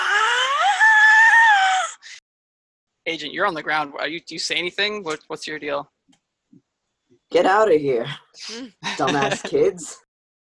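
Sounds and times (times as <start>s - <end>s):
person voicing a wailing scream imitating a beast's roaring cry: 0.0s - 2.0s
speech: 3.1s - 6.0s, 7.3s - 10.0s
laughter: 8.8s - 9.9s.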